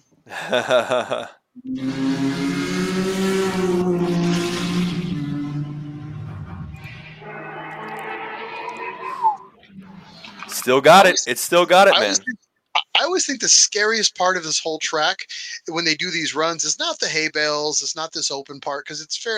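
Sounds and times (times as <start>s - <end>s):
laughter: 0.3s - 1.4s, 10.6s - 12.3s
speech: 0.3s - 2.4s, 10.6s - 12.4s, 13.0s - 19.3s
1000 PS race car engine roaring past during a run: 1.7s - 12.1s.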